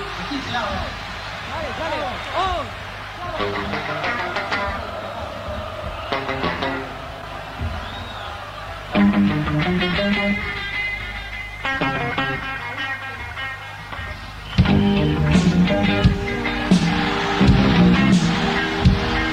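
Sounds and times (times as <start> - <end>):
many voices shouting together in unison to have a light turned off: 0.0 - 11.2, 16.3 - 19.3
large concert crowd of young Argentines roaring: 0.0 - 19.3
speech: 0.4 - 4.6, 9.0 - 10.6.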